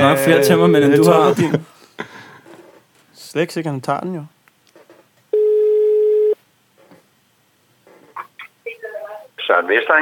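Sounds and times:
speech: 0.0s - 1.8s, 3.3s - 4.4s, 9.5s - 9.9s
telephone ringing tone while placing a call: 5.3s - 6.4s.

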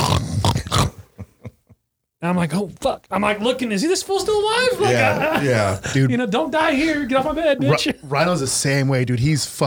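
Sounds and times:
person imitating the snoring of a pit bull puppy: 0.0s - 1.1s
speech: 2.2s - 9.6s
laughter: 4.4s - 8.1s.

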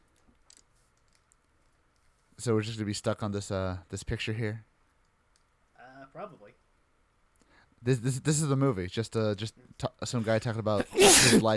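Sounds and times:
speech: 2.4s - 4.7s, 7.8s - 11.5s
loud sharp sneeze: 10.8s - 11.5s.

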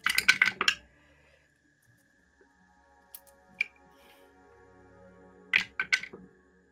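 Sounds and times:
handful of dice clattering across a hard table: 0.0s - 0.8s, 5.6s - 6.2s.

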